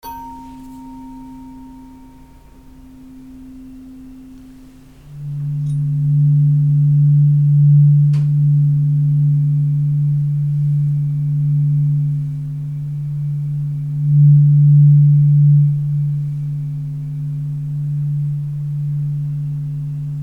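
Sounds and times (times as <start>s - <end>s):
tuning fork ringing: 0.0s - 20.2s.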